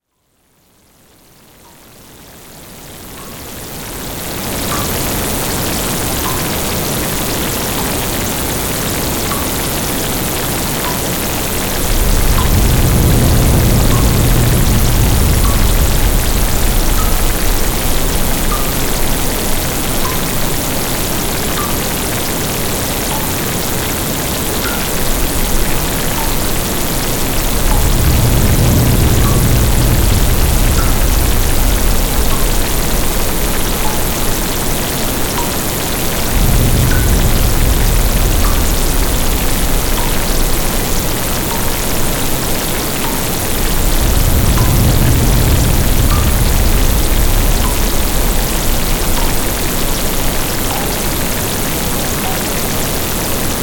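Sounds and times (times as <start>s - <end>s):
rain: 0.0s - 53.6s
thunder: 11.6s - 52.5s.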